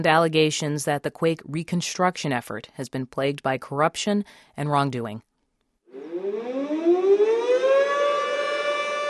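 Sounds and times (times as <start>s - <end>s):
speech: 0.0s - 5.3s
air raid sirens howling: 5.9s - 9.0s.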